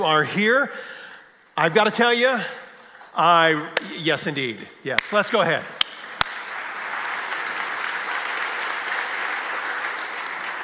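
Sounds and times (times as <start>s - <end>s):
speech: 0.0s - 1.0s, 1.6s - 5.8s
large group applauding at a Sunday church service: 5.8s - 10.6s.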